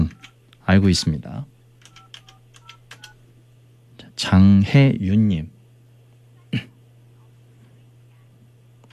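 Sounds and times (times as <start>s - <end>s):
speech: 0.7s - 1.5s, 4.3s - 5.6s
telephone keypad dialing tones: 1.8s - 3.2s.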